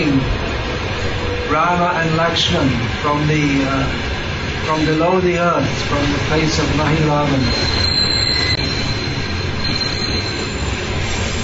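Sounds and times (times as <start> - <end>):
long train rumbling past: 0.0 - 11.4
speech: 1.5 - 7.9
high-pitched train wheel squeal: 5.9 - 11.4.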